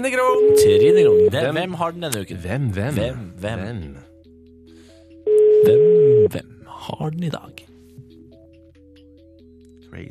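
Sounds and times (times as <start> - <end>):
speech: 0.0 - 4.1, 5.6 - 7.7
two-pitched telephone dialing tones: 5.3 - 6.3.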